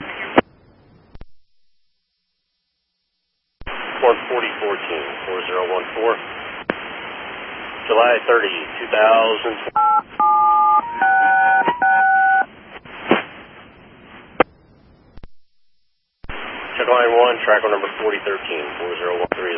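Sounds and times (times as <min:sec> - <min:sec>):
radio hiss: 0:00.0 - 0:00.4, 0:03.6 - 0:10.3, 0:12.7 - 0:14.5, 0:16.2 - 0:19.5
narrowband radio voice chatter: 0:03.8 - 0:06.7, 0:07.7 - 0:10.0, 0:16.5 - 0:19.5
speech: 0:04.0 - 0:06.4, 0:07.9 - 0:10.2, 0:16.9 - 0:19.5
DTMF touch-tone beeps dialing over a railroad two-way radio channel: 0:09.8 - 0:12.5.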